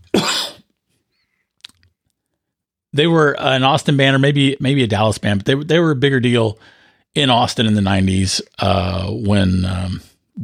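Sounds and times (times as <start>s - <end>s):
loud harsh cough: 0.1s - 0.7s
speech: 3.0s - 10.4s.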